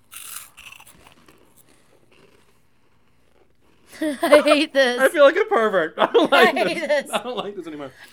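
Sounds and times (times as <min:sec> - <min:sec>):
crunchy chewing of small food balls: 0:00.0 - 0:03.9
laughter: 0:04.0 - 0:08.1
speech: 0:04.0 - 0:08.1.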